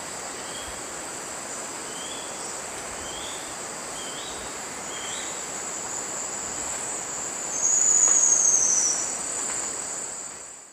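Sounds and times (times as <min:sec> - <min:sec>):
continuous high-pitched insect buzzing in the eastern lowlands of South America: 0:00.0 - 0:10.7
Yasuni antwren Epinecrophylla fjeldsaai singing a high thin whistle: 0:07.5 - 0:09.1.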